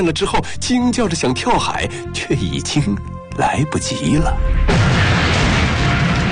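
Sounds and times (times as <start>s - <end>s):
speech: 0.0s - 4.9s
hand grenade explosion on a ship deck: 4.5s - 6.3s.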